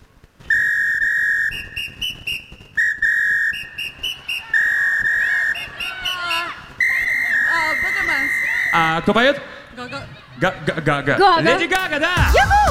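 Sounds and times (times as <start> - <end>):
man whistling a tune: 0.5 - 8.0
speech: 9.0 - 12.6.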